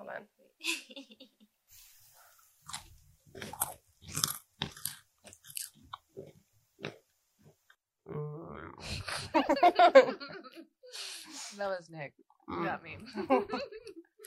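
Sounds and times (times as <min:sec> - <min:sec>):
crunching and chewing food: 0:02.6 - 0:08.2
laughter: 0:09.1 - 0:10.7, 0:13.0 - 0:14.2
speech: 0:11.6 - 0:13.8.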